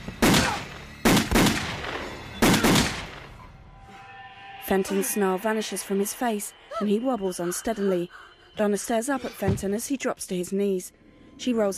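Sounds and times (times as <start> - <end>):
gunshots fired from a bedroom doorway during a violent struggle: 0.1 - 3.4
speech: 4.7 - 11.7.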